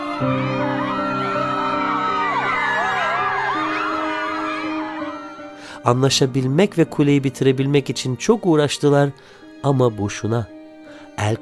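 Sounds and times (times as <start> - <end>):
dense crowd of people speaking different languages shouting over one another: 0.0 - 5.4
speech: 0.2 - 0.8, 5.8 - 10.6, 11.2 - 11.3.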